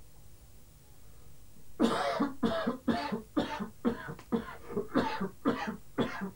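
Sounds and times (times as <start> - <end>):
person coughing harshly: 1.8 - 6.3.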